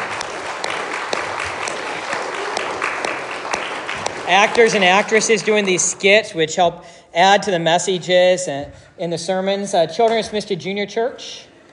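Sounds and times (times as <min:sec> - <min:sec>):
audience applause at a church service: 0:00.0 - 0:05.9
speech: 0:04.3 - 0:11.5.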